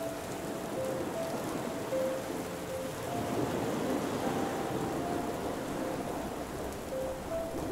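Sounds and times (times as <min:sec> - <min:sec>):
dense rain from a storm pouring down outside: 0:00.0 - 0:07.6.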